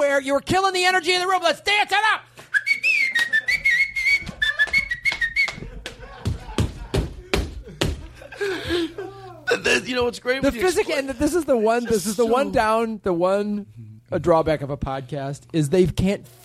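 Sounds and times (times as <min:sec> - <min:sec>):
faint hum: 0:00.0 - 0:16.4
speech: 0:00.2 - 0:02.5, 0:08.4 - 0:16.4
person whistling a tune: 0:02.5 - 0:05.6
laughter: 0:02.7 - 0:12.6
sharp claps or slaps: 0:04.2 - 0:08.0.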